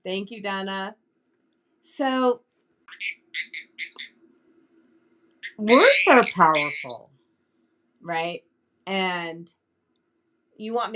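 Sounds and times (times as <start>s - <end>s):
speech: 0.0s - 1.0s, 1.8s - 4.1s, 5.6s - 7.1s, 8.0s - 9.6s, 10.6s - 10.9s
low steady hum: 0.0s - 10.9s
pet bird chirping: 2.9s - 4.1s, 5.4s - 7.0s.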